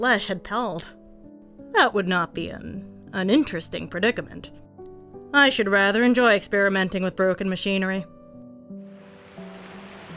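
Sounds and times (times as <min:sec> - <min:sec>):
speech: 0:00.0 - 0:01.0, 0:01.7 - 0:04.6, 0:05.3 - 0:08.1
river water rushing down into a narrow pass: 0:09.0 - 0:10.1.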